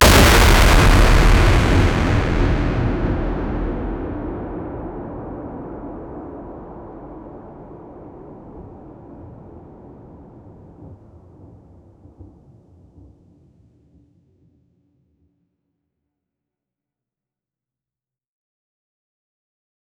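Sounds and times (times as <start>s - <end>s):
impact frame slice effect: 0.0s - 5.4s.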